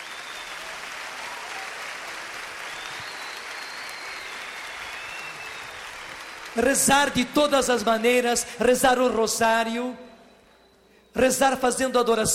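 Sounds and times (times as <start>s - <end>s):
church congregation applause during a Catholic sermon: 0.0s - 8.4s
speech: 6.6s - 10.1s, 11.2s - 12.3s.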